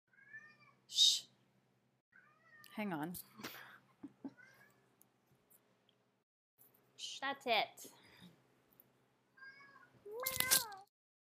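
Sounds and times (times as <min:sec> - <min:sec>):
cat meowing: 0:00.1 - 0:00.8, 0:09.4 - 0:10.9
speech: 0:00.9 - 0:01.1, 0:02.8 - 0:03.6, 0:07.2 - 0:08.0.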